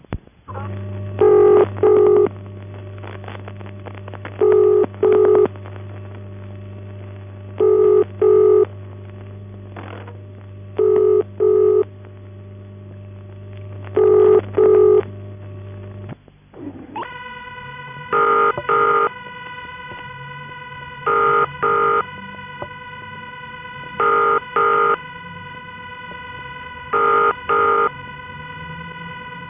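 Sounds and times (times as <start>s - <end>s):
steady low electrical hum: 0.0s - 29.4s
telephone ringing tone at an exchange feeding back into the machine: 1.2s - 2.3s, 4.4s - 5.5s, 7.6s - 8.7s, 10.8s - 11.9s, 14.0s - 15.1s, 17.0s - 29.4s.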